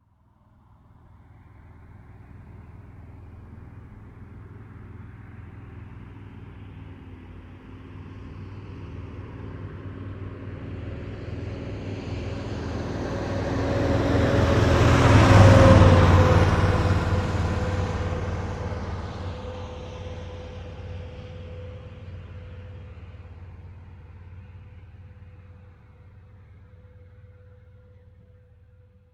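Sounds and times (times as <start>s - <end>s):
truck passing by: 0.6s - 29.1s.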